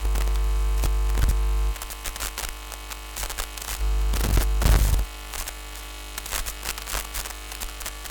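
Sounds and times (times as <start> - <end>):
steady resonant interference buzz tone: 0.0 - 8.0.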